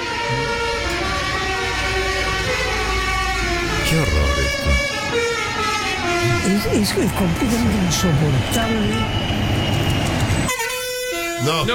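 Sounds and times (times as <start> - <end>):
musical car horn playing a short melody: 0.0 - 6.5, 10.5 - 11.7
low rumble of traffic and engines: 0.0 - 10.5
speech: 6.5 - 9.7, 11.4 - 11.7.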